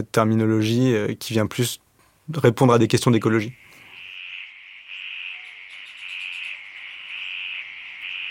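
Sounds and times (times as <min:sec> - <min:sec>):
speech: 0:00.0 - 0:03.6
frogs calling around a pond after rain: 0:03.3 - 0:08.2.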